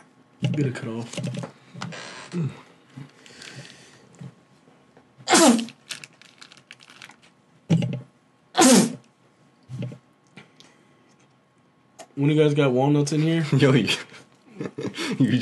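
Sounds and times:
speech: 0.5 - 1.6, 2.3 - 3.1, 12.2 - 14.1, 15.2 - 15.4
person sneezing: 5.2 - 5.8, 8.6 - 9.0
rustling: 5.6 - 7.3.

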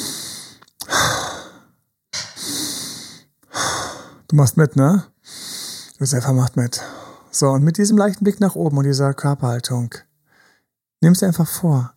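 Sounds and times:
slow deep relaxed breaths during a guided relaxation exercise: 0.0 - 4.3, 5.2 - 6.0, 6.8 - 7.3, 10.2 - 10.8
speech: 4.3 - 5.4, 6.0 - 10.1, 11.0 - 11.9.

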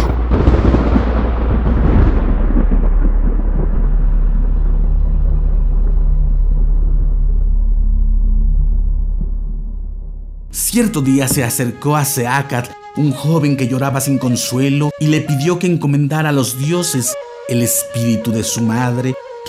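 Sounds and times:
loud thunder clap and deep rolling rumble: 0.0 - 12.4
speech: 10.8 - 19.4.

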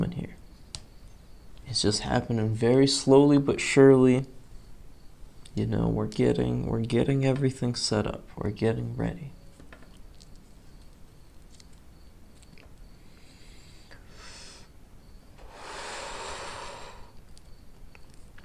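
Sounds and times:
speech: 1.7 - 4.4, 5.6 - 9.4
smoke drawn in through the nose during a French inhale: 13.0 - 14.7, 15.4 - 17.2.

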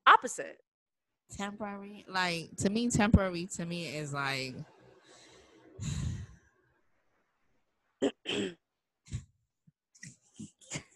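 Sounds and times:
speech: 0.2 - 0.7, 1.3 - 4.7
woman clearing her throat: 8.0 - 8.6.

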